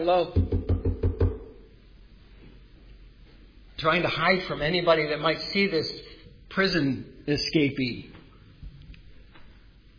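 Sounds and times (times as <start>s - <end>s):
speech: 0.0s - 0.4s, 3.8s - 8.1s
knocking on a gate at night: 0.4s - 1.5s.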